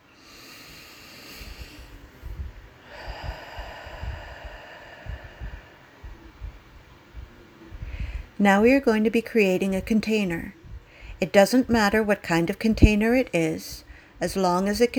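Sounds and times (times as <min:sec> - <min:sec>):
deep breath in through the nose and out through pursed lips: 0:00.0 - 0:08.4, 0:10.6 - 0:11.2, 0:13.8 - 0:14.2
speech: 0:08.4 - 0:10.6, 0:11.2 - 0:14.9.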